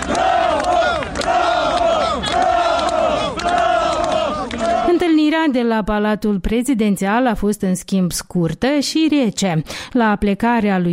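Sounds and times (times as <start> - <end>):
large crowd of supporters chanting and cheering in the street: 0.0 - 5.0
speech: 5.4 - 10.9.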